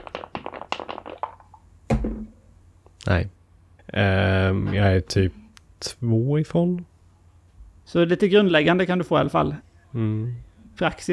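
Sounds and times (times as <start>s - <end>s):
die clattering across a hard surface: 0.0s - 2.4s
louder knock: 1.9s - 2.4s
speech: 3.1s - 6.9s, 7.9s - 11.1s.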